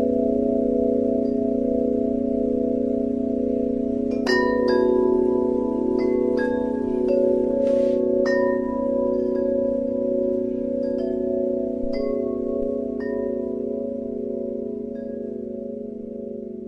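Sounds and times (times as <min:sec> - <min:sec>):
singing bowls droning: 0:00.0 - 0:16.6
chime-like strikes: 0:03.3 - 0:16.6.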